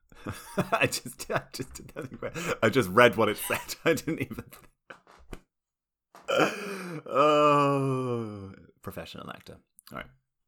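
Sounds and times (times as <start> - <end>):
speech: 0.2 - 4.7, 6.3 - 10.2
laughter: 0.2 - 5.1
person hiccuping: 6.3 - 6.6.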